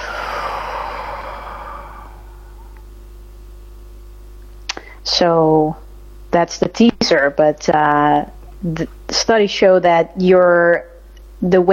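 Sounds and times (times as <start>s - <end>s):
long slow exhale during a guided relaxation breathing exercise: 0.0s - 2.9s
low constant hum: 0.0s - 11.7s
speech: 5.0s - 11.7s.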